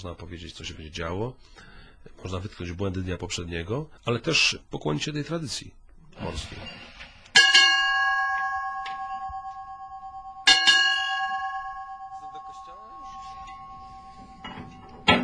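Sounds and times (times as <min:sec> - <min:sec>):
speech: 0:00.0 - 0:06.8
ship's bell struck in pairs marking ship's time: 0:07.3 - 0:15.2.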